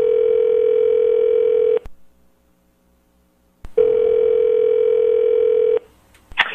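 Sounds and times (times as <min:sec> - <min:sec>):
home telephone ringing: 0:00.0 - 0:01.8, 0:03.8 - 0:05.8.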